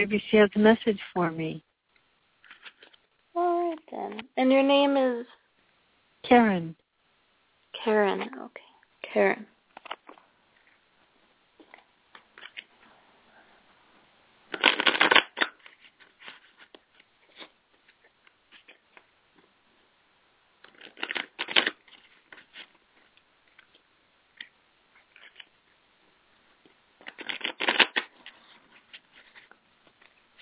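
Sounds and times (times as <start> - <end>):
speech: 0.0 - 1.7, 3.4 - 5.4, 6.2 - 6.8, 7.7 - 9.5
deck of animal cards being riffle shuffled: 14.5 - 19.0, 20.6 - 22.8, 27.0 - 30.4.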